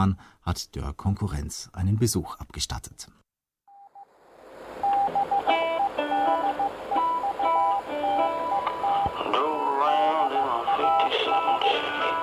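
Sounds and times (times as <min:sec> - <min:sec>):
speech: 0:00.0 - 0:03.2
crackling radio static with interference: 0:04.8 - 0:12.2
repeated Morse code beeping tones: 0:04.8 - 0:12.2.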